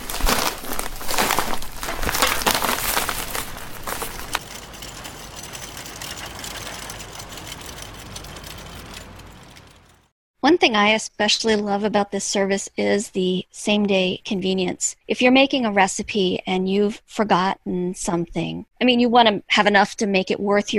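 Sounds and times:
plastic grocery bags crinkling and rustling while putting groceries away: 0.0s - 9.6s
speech: 10.5s - 20.7s.

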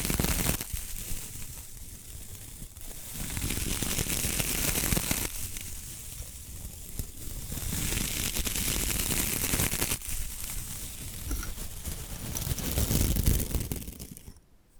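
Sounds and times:
bamboo brushed and scratched in hissing sweeps: 0.0s - 14.4s.

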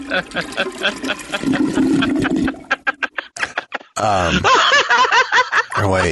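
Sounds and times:
toilet flushing with a rush of water: 0.0s - 2.9s
laughter: 0.0s - 6.0s
speech: 0.1s - 2.6s, 4.0s - 4.8s, 5.8s - 6.0s
person snickering: 0.2s - 4.8s.

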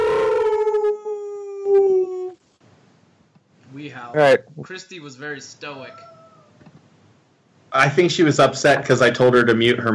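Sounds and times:
person howling like a wolf: 0.0s - 2.4s
speech: 3.8s - 6.1s, 7.7s - 9.9s.

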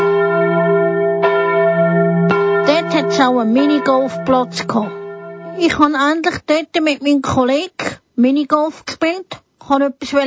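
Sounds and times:
church bells ringing near a village storehouse in Reckendorf: 0.0s - 6.1s
speech: 3.2s - 5.0s, 5.6s - 10.2s.

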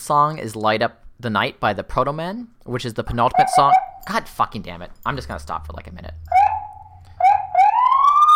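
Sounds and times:
speech: 0.0s - 6.4s
emergency vehicle siren whooping: 3.3s - 4.0s, 6.2s - 8.3s.

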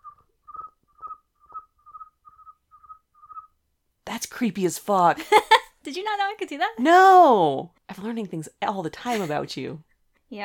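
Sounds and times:
person whistling short high chirps imitating a cricket's call: 0.0s - 3.5s
speech: 4.2s - 10.4s.

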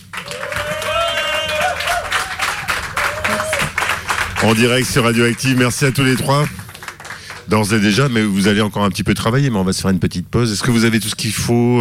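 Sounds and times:
small crowd applauding a live band: 0.0s - 8.3s
people whooping and calling out: 0.1s - 4.0s
speech: 4.4s - 6.6s, 7.5s - 11.7s.

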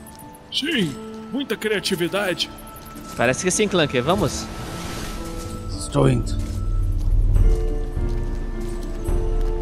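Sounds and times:
speech: 0.5s - 4.6s, 5.9s - 6.4s
waves inside a cave: 2.6s - 9.5s.

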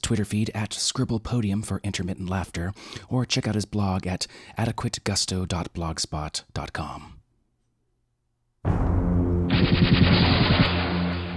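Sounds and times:
speech: 0.0s - 7.2s
sci-fi particle cannon firing with a crackling energy discharge: 8.7s - 11.3s.

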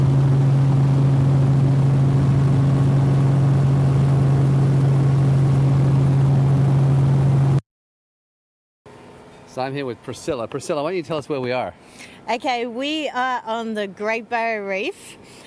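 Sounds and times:
helicopter engine droning while maneuvering to land on pontoon: 0.0s - 7.6s
speech: 9.6s - 15.4s.

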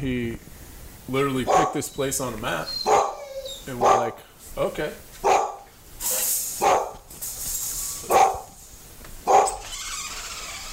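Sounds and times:
speech: 0.0s - 3.0s, 3.7s - 5.1s
constant hissing noise: 0.0s - 10.7s
dog barking: 1.4s - 1.9s, 2.8s - 4.2s, 5.2s - 7.0s, 8.0s - 8.6s, 9.2s - 9.6s.

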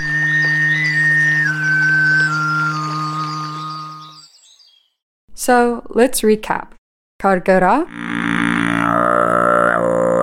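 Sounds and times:
Sygyt throat singing with low drone and whistling overtone melody: 0.0s - 4.2s, 7.9s - 10.2s
speech: 5.4s - 9.1s.

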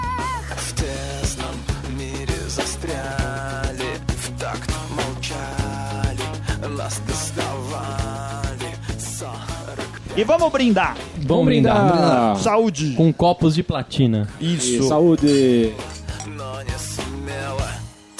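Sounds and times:
heavy rock music with drums, distorted guitars and bass: 0.0s - 11.2s, 15.2s - 18.1s
speech: 10.2s - 16.0s.

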